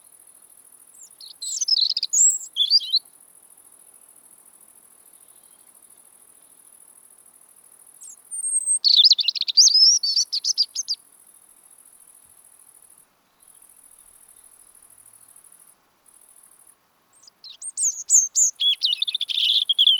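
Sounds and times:
European robin autumn song: 1.0s - 3.0s, 8.0s - 11.0s, 17.1s - 19.9s.

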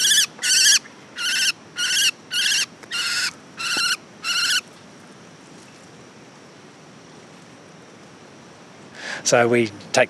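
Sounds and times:
silvereye giving harsh high scolding calls caught in a forest mist net: 0.0s - 4.7s
speech: 9.3s - 10.0s.

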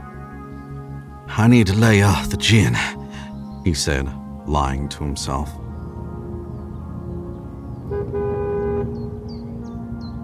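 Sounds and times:
speech: 1.3s - 3.0s, 3.6s - 5.7s
car engine purring as the car comes up a road: 7.6s - 9.7s
car horn toot: 7.9s - 9.1s.

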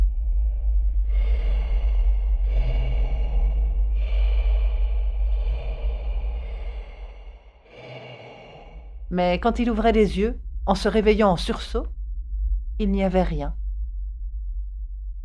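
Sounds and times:
steady low rumble: 0.0s - 15.2s
heavy deep icy breathing: 0.2s - 9.2s
speech: 9.2s - 12.0s, 12.8s - 13.6s.

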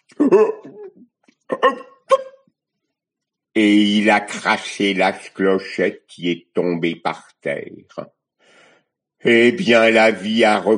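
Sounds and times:
person murmuring softly: 0.0s - 2.3s
person imitating a cat's hiccups: 0.0s - 2.5s
speech: 0.2s - 0.8s, 1.6s - 1.9s, 3.6s - 8.2s, 9.2s - 10.7s.

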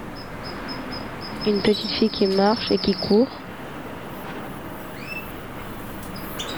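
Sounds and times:
faint high bird chirps: 0.0s - 6.5s
steady outdoor hiss: 0.0s - 6.5s
speech: 1.4s - 3.5s.

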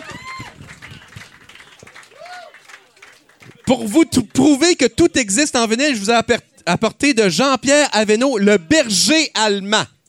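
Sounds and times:
crowd applause: 0.0s - 4.7s
speech: 3.7s - 9.9s.

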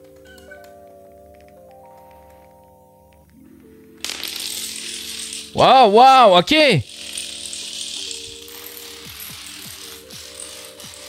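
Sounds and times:
Rube Goldberg chain-reaction machine clicking and rattling: 4.1s - 11.0s
speech: 5.6s - 6.9s.

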